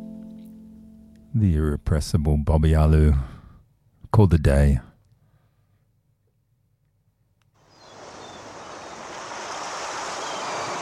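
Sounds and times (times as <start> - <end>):
speech: 1.3 - 3.4, 4.1 - 4.9
ocean surf breaking waves: 7.6 - 10.8.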